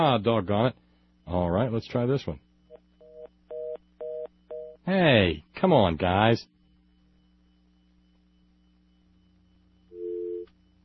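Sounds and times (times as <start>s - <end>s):
speech: 0.0s - 2.5s, 4.8s - 6.5s
faint constant hum: 0.0s - 10.8s
telephone busy signal beep on a phone line: 3.0s - 4.8s, 9.8s - 10.5s.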